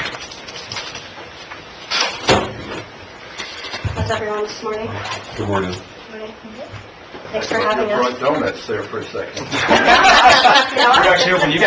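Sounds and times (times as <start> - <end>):
steady low hum: 0.0 - 11.6
sliding door bumping shut: 2.0 - 2.9
speech: 4.1 - 11.6
laughter: 9.4 - 11.6.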